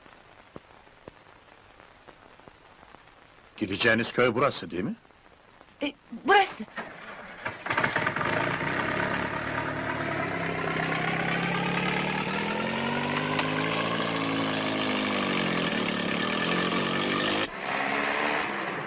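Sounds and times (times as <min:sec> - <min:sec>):
speech: 0:03.6 - 0:05.1, 0:05.8 - 0:06.9
truck engine running while driving: 0:06.8 - 0:18.8.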